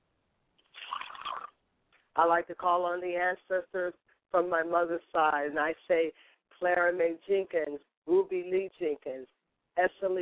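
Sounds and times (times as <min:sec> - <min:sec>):
liquid poured as a libation: 0:00.7 - 0:01.6
speech: 0:02.2 - 0:10.1.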